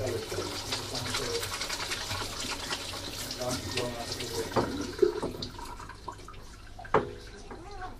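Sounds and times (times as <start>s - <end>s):
running water at a sink while washing up dishes: 0.0s - 7.9s
dishes knocking at a sink: 4.5s - 5.4s.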